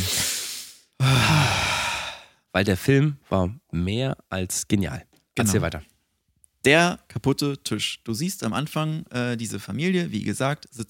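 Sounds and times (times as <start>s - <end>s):
long audible exhale with voiced sighing edge: 0.0s - 2.3s
deep breath drawn in: 0.0s - 2.4s
speech: 2.6s - 5.9s, 6.6s - 10.8s.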